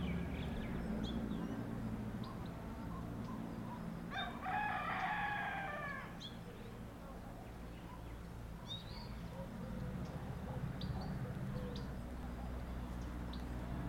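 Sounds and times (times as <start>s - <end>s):
small bird calls in an Asian village: 0.0s - 13.7s
constant low hum: 0.0s - 13.8s
rooster crowing in an Asian village in the afternoon: 4.1s - 6.2s.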